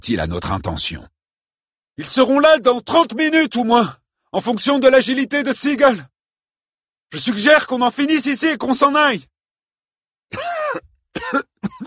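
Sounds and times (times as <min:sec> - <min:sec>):
speech: 0:00.0 - 0:01.2, 0:02.0 - 0:06.1, 0:07.1 - 0:09.3, 0:10.3 - 0:11.8
person coughing: 0:10.3 - 0:11.8.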